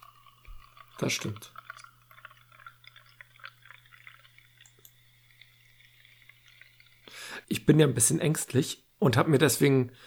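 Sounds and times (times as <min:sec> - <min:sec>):
cloudy helles light lager beer fizzing in a glass: 0:00.0 - 0:07.8
low electrical hum: 0:00.0 - 0:10.0
speech: 0:01.0 - 0:01.6, 0:07.5 - 0:10.0.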